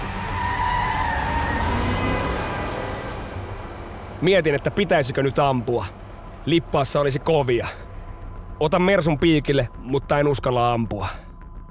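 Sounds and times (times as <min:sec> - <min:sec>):
car engine roaring under hard acceleration: 0:00.0 - 0:06.8
car tyres squealing under hard acceleration: 0:00.2 - 0:03.1
speech: 0:04.2 - 0:07.9, 0:08.6 - 0:11.2.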